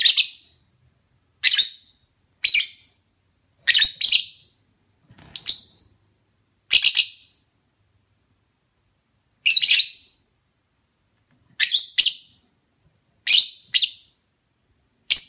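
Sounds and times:
lovebird mating call chirping: 0.0 - 0.6, 1.4 - 3.0, 3.6 - 4.6, 5.3 - 5.8, 6.7 - 7.4, 9.4 - 10.2, 11.6 - 12.4, 13.2 - 14.2, 15.1 - 15.2.

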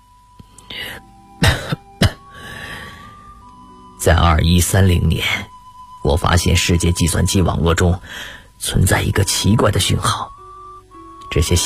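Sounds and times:
harsh coughs from a radio drama character: 1.4 - 2.3
breathing: 2.4 - 3.3, 8.0 - 8.6
speech: 4.1 - 5.5, 6.1 - 10.3, 11.3 - 11.6.

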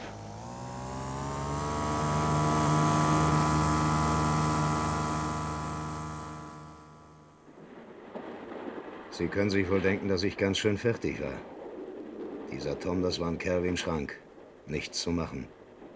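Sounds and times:
car engine roaring at full throttle: 0.0 - 7.4
speech: 9.2 - 11.6, 12.5 - 15.6.

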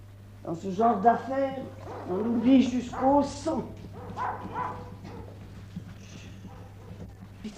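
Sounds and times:
low steady hum: 0.0 - 7.5
speech: 0.4 - 4.9
dogs barking: 1.7 - 7.4.

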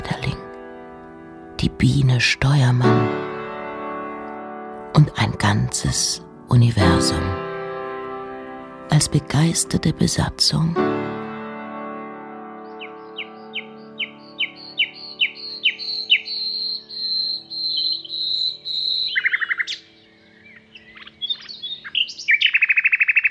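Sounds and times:
speech: 1.6 - 3.3, 5.0 - 7.4, 9.0 - 11.1
birds singing: 12.6 - 23.2.

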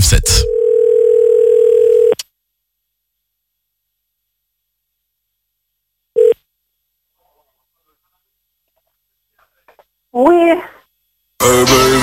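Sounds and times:
speech: 0.1 - 0.5, 10.2 - 10.8
telephone dial tone as a call is placed: 0.5 - 2.2.

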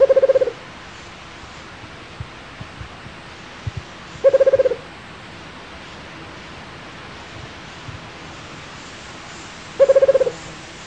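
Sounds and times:
Rufous-capped Motmot Baryphthengus ruficapillus trilling low hoots: 0.0 - 0.6, 4.2 - 4.8, 9.8 - 10.4.

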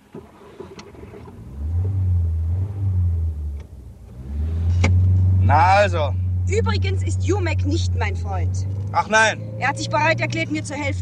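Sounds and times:
car engine revving and driving off: 0.9 - 10.9
speech: 5.5 - 10.9.

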